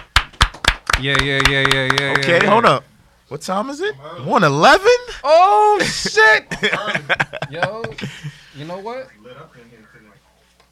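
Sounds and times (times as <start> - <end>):
hand claps: 0.0 - 2.6
speech: 1.0 - 10.1
laughter: 5.8 - 8.6.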